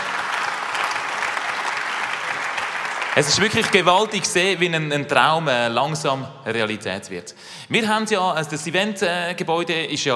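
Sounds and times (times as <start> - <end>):
audience applause: 0.0 - 4.2
speech: 3.2 - 10.1.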